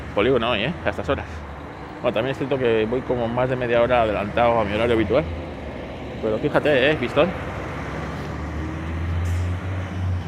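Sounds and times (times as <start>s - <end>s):
heavy hopper trucks driving out of a company: 0.0s - 10.2s
speech: 0.2s - 5.4s, 6.2s - 7.5s.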